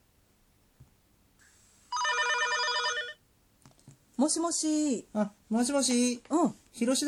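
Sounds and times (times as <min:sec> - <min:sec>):
telephone ringing: 0:01.9 - 0:03.2
speech: 0:04.2 - 0:07.0.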